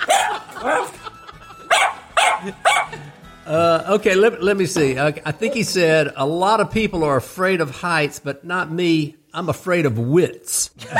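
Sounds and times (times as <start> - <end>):
dog barking: 0.0 - 1.0, 1.7 - 3.0
laughter: 0.0 - 3.8, 10.8 - 10.9
speech: 0.6 - 1.0, 3.5 - 10.9.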